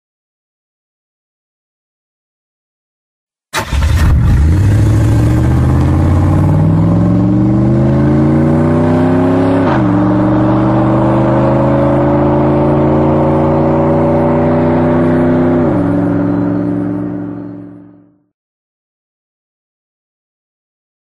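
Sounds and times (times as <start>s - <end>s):
classic car engine: 3.6s - 18.2s.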